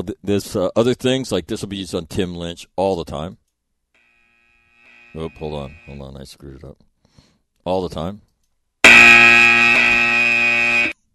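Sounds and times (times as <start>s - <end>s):
speech: 0.0s - 3.4s, 5.1s - 6.9s, 7.6s - 8.3s
loud harsh electronic buzzer: 4.0s - 6.1s, 8.8s - 11.0s.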